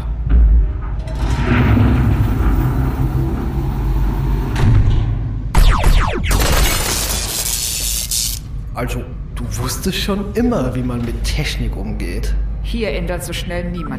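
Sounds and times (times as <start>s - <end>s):
large hangar door opening with mechanical rumble and hiss: 0.0s - 7.2s
speech: 8.8s - 13.9s.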